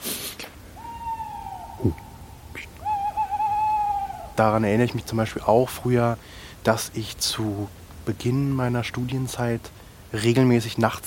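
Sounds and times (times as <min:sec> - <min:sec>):
small owl hooting at night: 0:00.7 - 0:05.9
speech: 0:01.8 - 0:02.1, 0:04.4 - 0:11.0.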